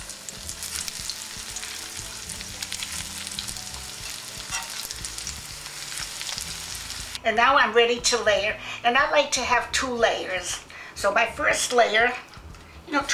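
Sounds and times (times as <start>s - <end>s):
eggplant slices frying in oil in a pan: 0.0s - 7.2s
speech: 7.3s - 12.3s, 12.9s - 13.1s.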